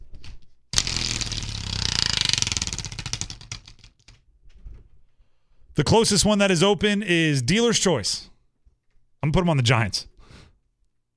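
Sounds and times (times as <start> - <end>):
spinning prize wheel clicking: 0.8 - 3.9
speech: 5.8 - 8.3, 9.2 - 10.1.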